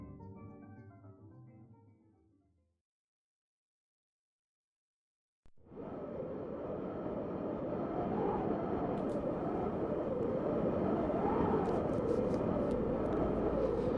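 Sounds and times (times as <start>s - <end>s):
wind rushing with gusts: 5.7s - 13.9s.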